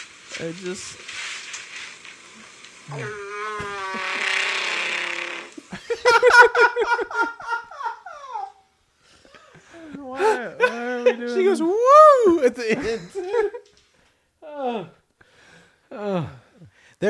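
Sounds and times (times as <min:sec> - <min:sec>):
speech: 0:00.4 - 0:01.2, 0:02.9 - 0:03.3, 0:06.1 - 0:07.5, 0:09.8 - 0:13.6, 0:14.6 - 0:15.0, 0:16.0 - 0:16.4
long loud warbling growly fart: 0:02.9 - 0:05.7
laughter: 0:05.6 - 0:08.6, 0:09.8 - 0:13.7.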